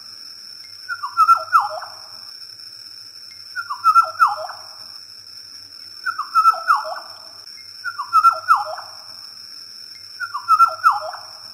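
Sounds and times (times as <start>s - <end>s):
oriole whistled song: 0.9s - 2.0s, 3.6s - 4.6s, 6.0s - 7.1s, 7.8s - 8.9s, 10.2s - 11.4s.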